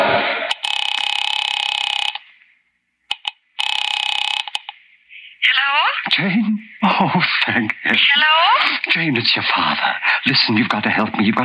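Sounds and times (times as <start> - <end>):
telephone ringing on the line after a number is dialed: 0.5 - 2.2, 3.2 - 4.7
speech: 6.1 - 11.4.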